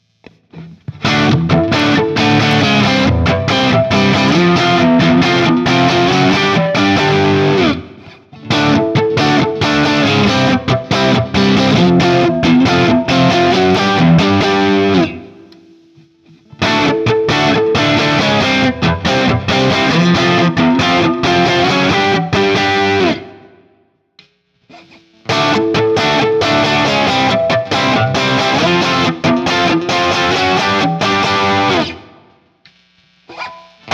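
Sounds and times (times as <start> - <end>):
1988 Guild Liberator Elite guitar with JCM800 single coil: 0.0 - 33.9.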